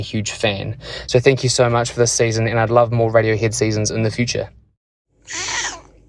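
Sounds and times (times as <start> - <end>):
speech: 0.0 - 4.6
cat yowling: 5.2 - 6.0.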